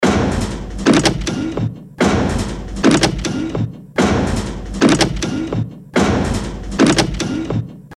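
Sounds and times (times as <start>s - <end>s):
machinery: 0.0s - 7.9s.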